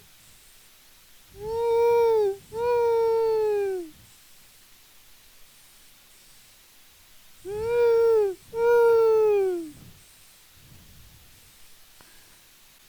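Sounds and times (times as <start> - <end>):
owl hooting with drawn-out wailing hoots: 1.4 - 3.9, 7.5 - 9.7.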